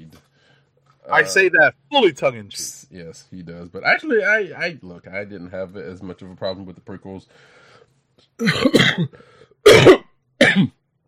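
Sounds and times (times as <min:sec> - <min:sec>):
speech: 0:01.1 - 0:07.6, 0:08.4 - 0:10.8
person coughing: 0:08.4 - 0:10.8.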